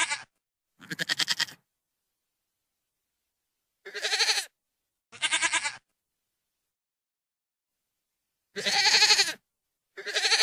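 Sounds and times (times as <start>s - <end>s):
goat bleating: 0.0s - 1.6s, 3.8s - 4.5s, 5.1s - 5.9s, 8.6s - 9.4s, 10.0s - 10.4s.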